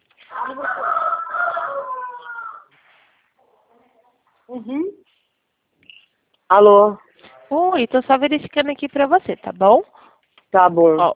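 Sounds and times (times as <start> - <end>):
chicken crowing while held: 0.2 - 2.7
speech: 0.5 - 0.9, 4.5 - 5.0, 6.5 - 9.9, 10.5 - 11.1.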